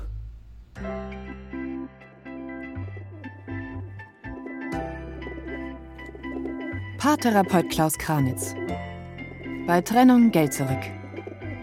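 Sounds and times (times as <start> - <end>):
bird calling in low throaty hoots: 2.6 - 11.6
speech: 7.0 - 8.8, 9.7 - 11.0.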